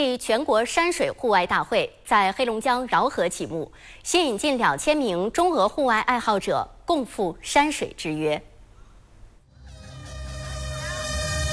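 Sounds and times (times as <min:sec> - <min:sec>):
speech: 0:00.0 - 0:08.5
starting horn blast: 0:09.5 - 0:11.5.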